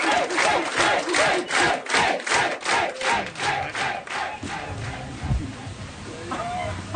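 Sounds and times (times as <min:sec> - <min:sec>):
lively crowd chanting together loudly: 0:00.0 - 0:05.2.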